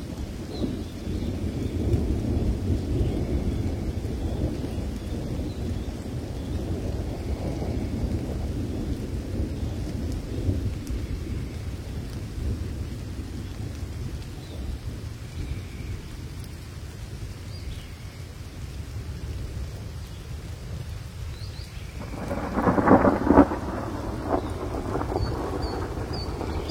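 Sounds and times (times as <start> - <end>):
rain falling at night: 0.0 - 26.7
loud crackling burst: 22.0 - 26.7.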